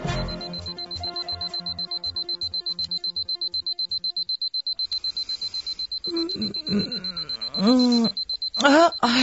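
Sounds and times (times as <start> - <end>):
alarm clock ringing with high electronic pulses: 0.1 - 9.2
person crying out: 6.1 - 9.2.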